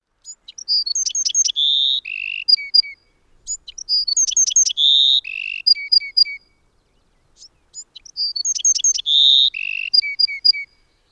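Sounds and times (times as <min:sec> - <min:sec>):
Bewick's wren song in UT: 0:00.2 - 0:11.1.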